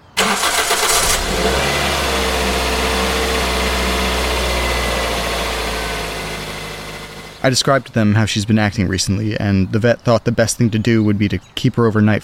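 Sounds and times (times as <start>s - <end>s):
car starter whir: 0.2s - 7.5s
speech: 7.4s - 12.2s.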